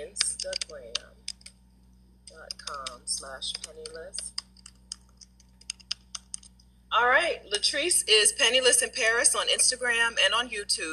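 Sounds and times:
room hum: 0.0s - 10.9s
typing on a computer keyboard: 0.2s - 1.5s, 2.3s - 6.5s
speech: 2.7s - 4.4s, 6.9s - 10.9s.

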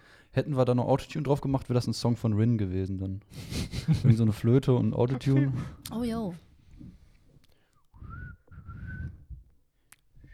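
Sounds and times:
speech: 0.3s - 6.9s
laughter: 3.3s - 5.9s
person whistling: 7.9s - 9.5s, 10.2s - 10.3s.

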